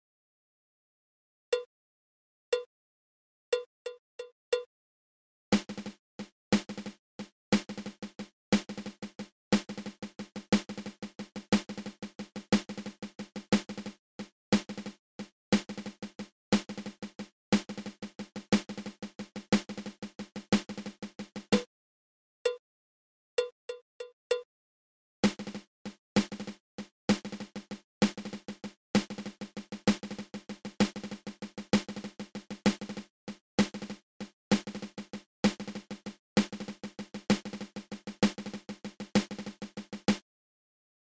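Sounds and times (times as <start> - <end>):
drag paradiddle on drum: 5.5 - 21.7, 25.2 - 40.2.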